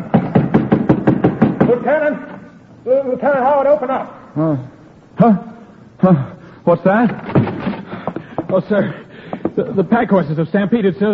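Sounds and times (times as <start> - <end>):
hammer pounding a golden nail into a sign at a fort: 0.0 - 1.9
speech: 1.8 - 7.4, 8.5 - 9.0, 9.6 - 11.1.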